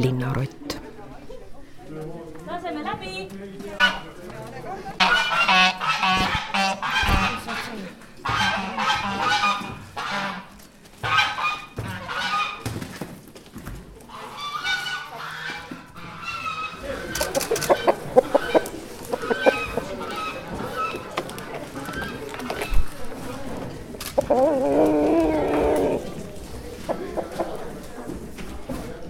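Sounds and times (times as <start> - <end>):
speech: 0.0 - 0.6
chickens clucking and squawking in a barnyard: 3.7 - 4.3, 4.9 - 13.0, 14.0 - 29.0
flock of geese honking: 3.8 - 4.1, 5.0 - 12.6, 14.1 - 21.2.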